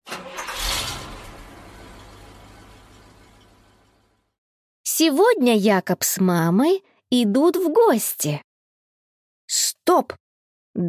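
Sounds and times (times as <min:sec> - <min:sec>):
fire truck engines starting and idling: 0:00.0 - 0:04.4
speech: 0:05.0 - 0:08.4, 0:09.9 - 0:10.2.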